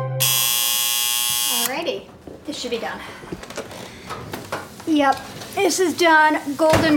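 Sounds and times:
kitchen timer electronic alarm: 0.2 - 1.7
speech: 2.6 - 3.5, 4.9 - 6.9.

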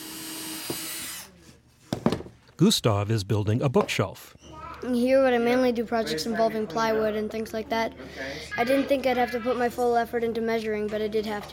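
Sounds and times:
power tool whining in an underground workshop: 0.0 - 1.3
speech: 2.6 - 11.5.

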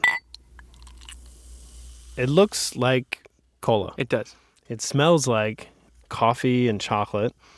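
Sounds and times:
glass clink: 0.0 - 0.4
bottled coffee pouring into a glass: 0.0 - 1.4
speech: 2.2 - 7.5.

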